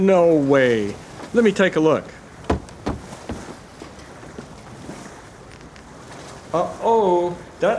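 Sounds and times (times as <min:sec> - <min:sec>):
speech: 0:00.0 - 0:02.2, 0:06.5 - 0:07.7
water sloshing around a rocking boat: 0:00.0 - 0:07.7
sharp knocks: 0:02.4 - 0:03.6.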